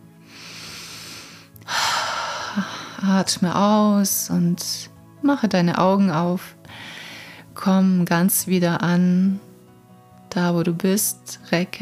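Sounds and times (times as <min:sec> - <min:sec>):
deep breath in during guided meditation: 0:00.2 - 0:03.0, 0:06.7 - 0:07.5
speech: 0:02.6 - 0:06.6, 0:07.6 - 0:09.5, 0:10.3 - 0:11.8.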